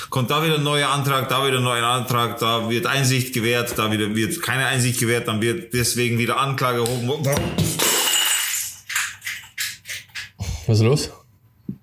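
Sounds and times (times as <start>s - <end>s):
speech: 0.2s - 7.8s, 10.7s - 11.2s
half-full glass water bottle hitting the floor and shattering: 7.4s - 9.5s
glass shards clinking and skittering: 7.8s - 9.1s.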